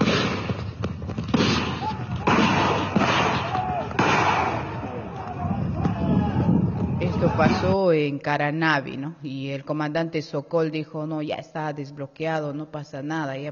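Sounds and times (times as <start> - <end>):
police firing tear gas and rubber bullets at a road blockade: 0.0 - 7.8
constant rumble of crowd noise: 0.0 - 7.9
people shouting: 1.6 - 7.8
speech: 7.4 - 13.4.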